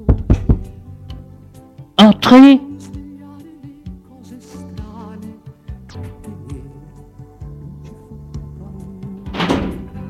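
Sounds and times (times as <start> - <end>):
firm knocks on a door: 0.0 - 0.8
speech: 2.0 - 2.7.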